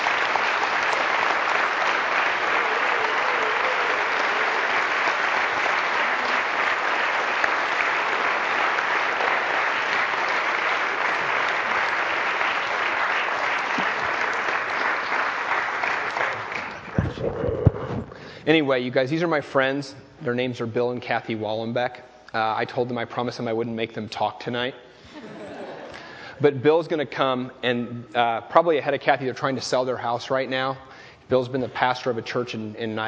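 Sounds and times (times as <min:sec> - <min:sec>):
audience applause for a visiting couple being introduced: 0:00.0 - 0:17.9
speech: 0:18.5 - 0:24.9, 0:26.4 - 0:33.0.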